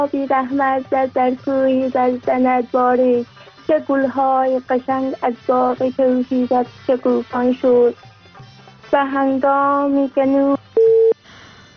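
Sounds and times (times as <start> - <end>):
speech: 0.0 - 8.1, 8.9 - 10.6
telephone busy tone after a dropped call: 10.8 - 11.2.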